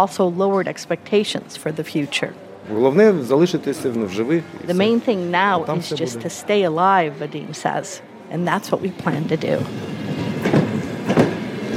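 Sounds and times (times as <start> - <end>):
speech: 0.0 - 10.1
train pulling into a station in Sloviansk Ukraine: 8.8 - 11.7
heavy rhythmic clacks of train wheels over track joints: 9.6 - 11.7.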